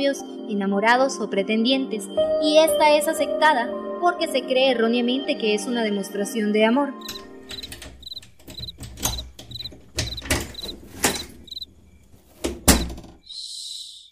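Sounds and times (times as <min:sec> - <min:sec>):
speech: 0:00.0 - 0:07.6
door pushed shut with a sharp thud: 0:07.0 - 0:11.6, 0:12.2 - 0:13.2
dull knocks and creaks: 0:07.0 - 0:13.2
crickets chirping: 0:07.0 - 0:14.1.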